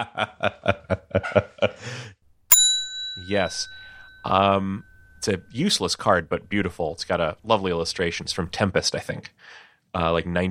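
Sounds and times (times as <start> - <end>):
speech: 0.0 - 1.4, 3.3 - 10.4
chuckling laughter: 0.0 - 1.9
bell strike: 2.5 - 5.8.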